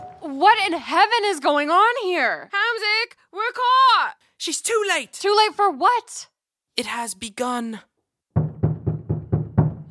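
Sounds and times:
speech: 0.5s - 7.9s
knocking on a door: 8.4s - 9.8s.

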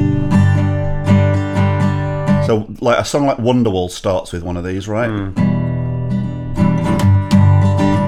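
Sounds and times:
unamplified acoustic guitar strummed chords with metallic ring: 0.0s - 2.8s, 5.3s - 8.0s
speech: 2.5s - 5.6s.

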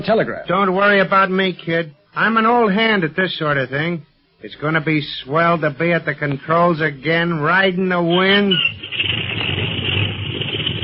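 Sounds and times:
speech: 0.0s - 9.3s
aircraft engine warming up: 8.6s - 10.8s.

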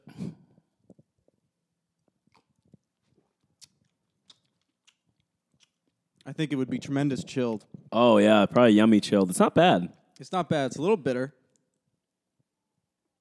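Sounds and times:
person sipping a drink: 0.0s - 6.0s
mouth clicks and smacks while tasting a drink: 0.0s - 6.4s
speech: 6.3s - 11.4s.

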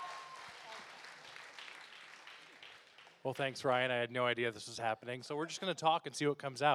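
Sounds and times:
audience applause: 0.0s - 3.2s
speech: 3.2s - 6.7s.

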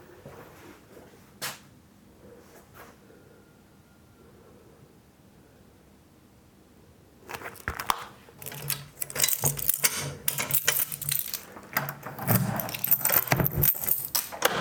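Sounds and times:
keys jangling and clinking while carried into a bedroom: 8.4s - 14.5s.

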